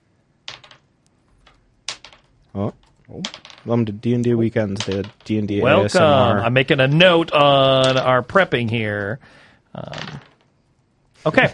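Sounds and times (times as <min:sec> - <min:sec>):
dice clattering across a hard tabletop: 0:00.4 - 0:03.9, 0:04.7 - 0:05.5, 0:07.8 - 0:08.1, 0:09.8 - 0:10.6
speech: 0:02.5 - 0:10.3, 0:11.2 - 0:11.5.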